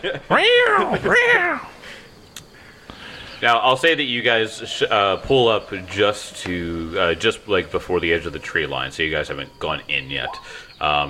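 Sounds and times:
speech: 0.0s - 2.0s, 3.4s - 11.0s
person imitating cats fighting with wavering yowls: 0.3s - 1.8s.

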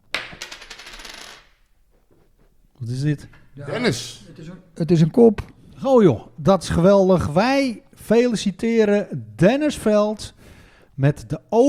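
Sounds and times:
tossed coin landing and spinning on a hard surface: 0.0s - 1.7s
speech: 2.8s - 11.6s.

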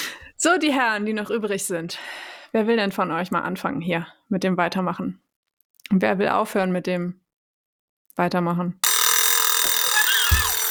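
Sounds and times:
speech: 0.4s - 5.2s, 5.9s - 7.2s, 8.2s - 8.9s
alarm clock ringing: 8.8s - 10.7s.

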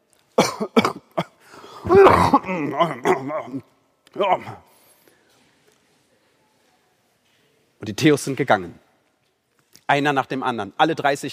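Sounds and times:
person giving sharp deliberate coughs: 0.4s - 3.6s
speech: 0.6s - 1.0s, 1.9s - 4.7s, 7.8s - 8.8s, 9.9s - 11.3s.

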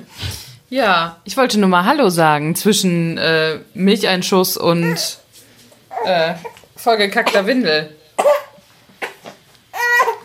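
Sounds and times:
speech: 0.0s - 5.2s, 6.0s - 8.4s
infant fussing and crying in strained whimpers: 4.8s - 5.2s, 5.9s - 6.6s, 8.2s - 10.2s.

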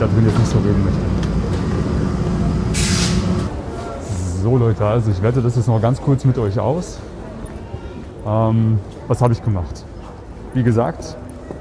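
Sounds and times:
speech: 0.0s - 1.2s, 4.4s - 7.2s, 8.2s - 9.9s, 10.5s - 11.2s
subway train rumbling into a station: 0.0s - 4.7s
subway train air brakes hissing: 2.6s - 4.2s.

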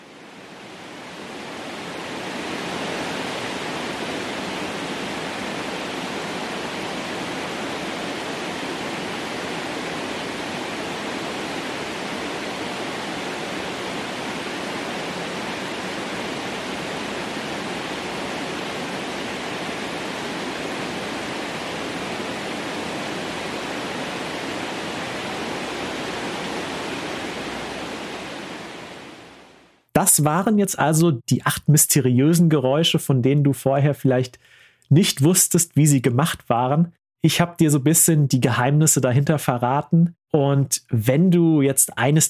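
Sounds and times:
relaxation noise made from an organic sound source: 0.0s - 32.0s
speech: 30.0s - 42.2s.

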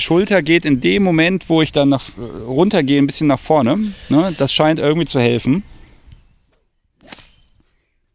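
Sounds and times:
speech: 0.0s - 5.7s
whip swishing through the air and cracking: 7.0s - 7.6s.

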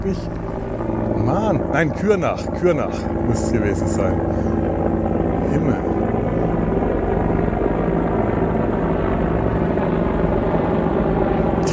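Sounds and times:
two huge helicopters flying low overhead: 0.0s - 11.7s
speech: 0.1s - 0.5s, 1.3s - 4.9s, 5.5s - 6.0s.

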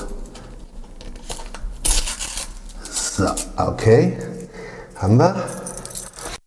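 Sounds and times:
police paper seal crinkling on a door: 0.0s - 3.6s
paper seal being torn off a door: 1.0s - 3.5s
speech: 3.2s - 4.3s, 5.0s - 5.6s.

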